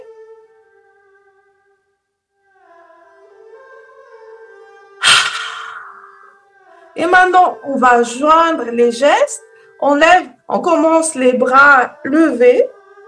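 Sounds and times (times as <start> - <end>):
several people exhaling explosively with a voiced ha: 5.0 - 6.3
several people inhaling together: 5.0 - 6.3
speech: 7.0 - 12.8.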